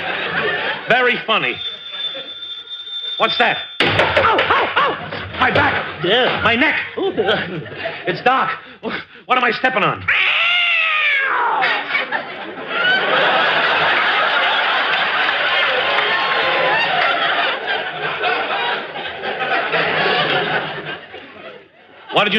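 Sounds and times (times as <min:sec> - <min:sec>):
laughter: 0:00.0 - 0:09.0, 0:11.5 - 0:22.3
speech: 0:00.9 - 0:01.7, 0:03.2 - 0:10.3, 0:22.1 - 0:22.3
cat yowling: 0:10.1 - 0:11.9.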